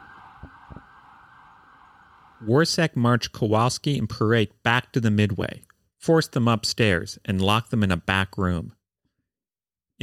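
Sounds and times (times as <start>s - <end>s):
police car siren: 0.0s - 2.8s
speech: 2.4s - 8.8s.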